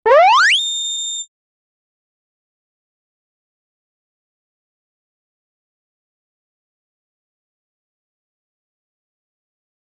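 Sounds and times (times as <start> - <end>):
cartoon pop appearance: 0.1 - 0.6.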